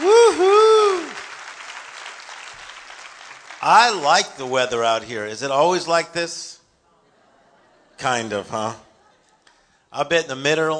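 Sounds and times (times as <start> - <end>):
church congregation clapping: 0.0 - 5.0
speech: 3.7 - 6.6, 8.0 - 8.9, 9.9 - 10.7.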